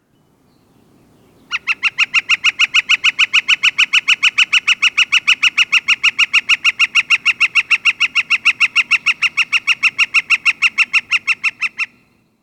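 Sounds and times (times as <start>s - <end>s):
Northern Flicker Kik-kik calls: 1.4s - 12.3s.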